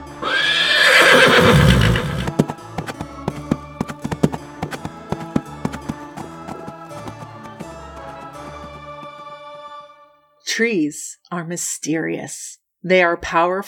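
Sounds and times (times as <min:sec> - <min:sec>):
horse whinnying: 0:00.0 - 0:02.4
horse hooves pounding: 0:00.2 - 0:07.8
speech: 0:10.6 - 0:13.6.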